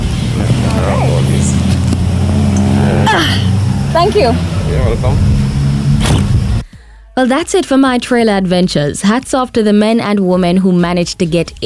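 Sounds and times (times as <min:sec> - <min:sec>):
large truck engine idling: 0:00.0 - 0:06.6
faint voices: 0:00.4 - 0:01.6
speech: 0:04.0 - 0:05.4, 0:07.2 - 0:11.6.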